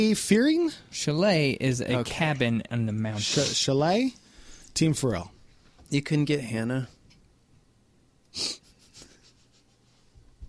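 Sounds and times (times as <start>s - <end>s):
speech: 0.0s - 4.2s, 4.8s - 7.0s, 8.4s - 8.6s
person sniffing: 3.2s - 3.7s, 8.3s - 9.7s.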